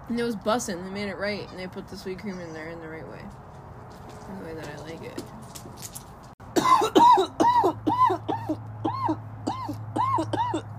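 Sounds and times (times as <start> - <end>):
speech: 0.1 - 3.5, 4.3 - 6.0
person coughing harshly: 6.5 - 10.7.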